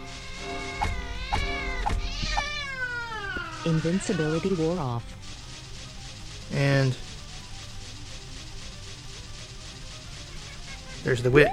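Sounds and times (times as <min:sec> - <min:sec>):
video game cat meowing, a witch's pet familiar: 0:00.2 - 0:03.6
speech: 0:03.6 - 0:05.2, 0:06.5 - 0:07.0, 0:11.1 - 0:11.5
steady harmonic video game background: 0:04.6 - 0:11.5.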